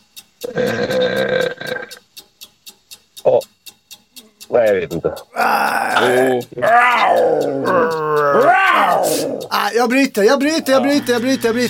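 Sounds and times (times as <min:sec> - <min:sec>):
person imitating lion roars: 0:00.4 - 0:01.9, 0:04.8 - 0:09.5
speech: 0:00.6 - 0:01.4, 0:04.6 - 0:11.6.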